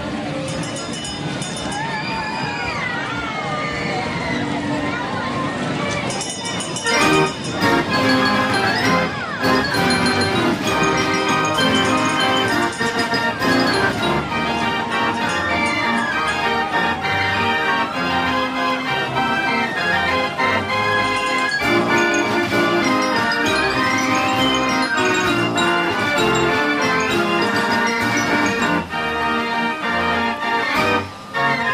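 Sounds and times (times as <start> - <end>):
voices at a fairground: 0.0 - 28.9
swooping gliding tones at a fairground: 4.1 - 31.7
pounding music-like beat with shrill tones at a fairground: 7.1 - 29.0.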